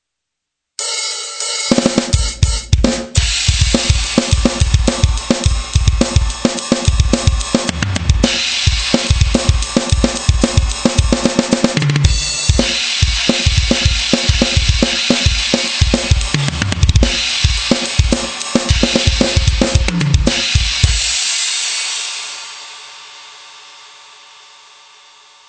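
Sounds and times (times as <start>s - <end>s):
bass drum: 1.7s - 21.2s.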